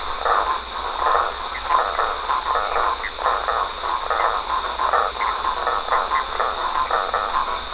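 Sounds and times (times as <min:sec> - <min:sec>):
frogs: 0:00.0 - 0:07.7
insects: 0:00.0 - 0:07.7.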